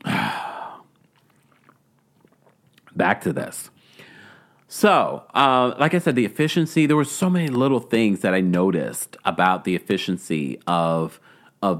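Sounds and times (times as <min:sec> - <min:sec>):
single airy sip of a drink: 0:00.0 - 0:03.0
speech: 0:03.0 - 0:03.8, 0:04.7 - 0:11.7.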